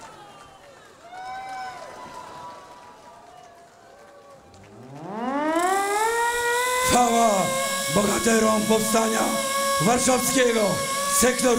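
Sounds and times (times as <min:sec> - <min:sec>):
live concert crowd roar: 0:00.0 - 0:11.5
siren set off at a live concert: 0:04.5 - 0:11.5
speech: 0:07.0 - 0:11.5.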